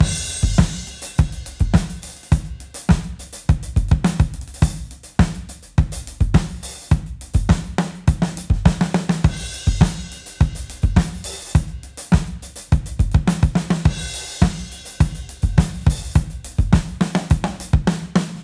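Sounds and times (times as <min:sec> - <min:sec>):
parallel kick drum: 0:00.0 - 0:17.9.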